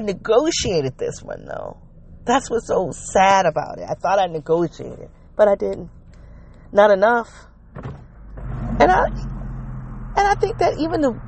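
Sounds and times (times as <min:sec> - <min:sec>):
speech: 0:00.0 - 0:06.0, 0:06.7 - 0:08.0, 0:08.6 - 0:09.3, 0:10.2 - 0:11.2
low rumble of a vehicle interior: 0:00.0 - 0:11.2
car power window motor whining as the window rolls down: 0:07.8 - 0:10.1.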